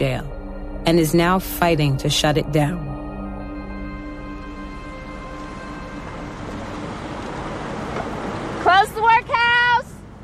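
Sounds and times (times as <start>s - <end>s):
speech: 0.9s - 2.9s
traffic at a busy intersection: 3.8s - 10.2s.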